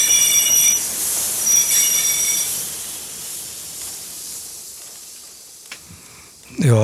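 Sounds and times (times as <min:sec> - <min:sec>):
train wheels screeching in high metallic squeals: 0:00.0 - 0:05.6
train pulling into station with broadband rush and rolling hiss: 0:00.0 - 0:06.8
speech: 0:06.6 - 0:06.8.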